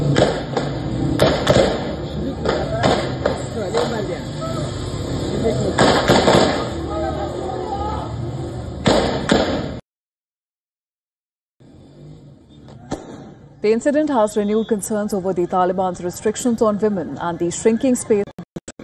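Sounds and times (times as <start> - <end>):
gunfire during a street protest: 0.1 - 3.9, 5.8 - 6.7, 8.9 - 9.8
shouting crowd outdoors at a street protest: 1.9 - 8.7
speech: 13.7 - 18.3.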